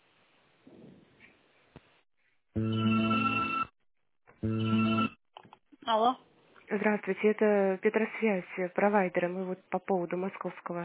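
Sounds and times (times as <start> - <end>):
telephone ringback tones while a call is transferred: 2.6 - 3.7, 4.4 - 5.2
speech: 6.8 - 10.8.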